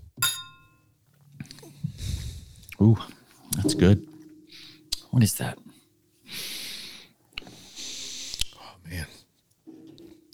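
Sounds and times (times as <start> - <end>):
glasses clinking in a toast: 0.0 - 0.8
speech: 2.8 - 4.1, 5.2 - 5.7.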